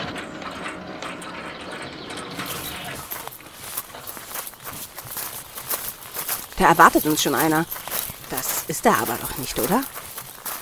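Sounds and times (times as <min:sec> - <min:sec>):
gate opening at the entrance to a large house: 0:00.0 - 0:04.7
speech: 0:06.6 - 0:07.9, 0:08.7 - 0:10.0.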